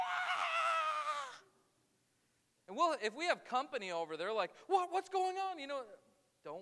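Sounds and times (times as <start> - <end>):
child screaming: 0.0 - 1.4
speech: 2.8 - 6.5.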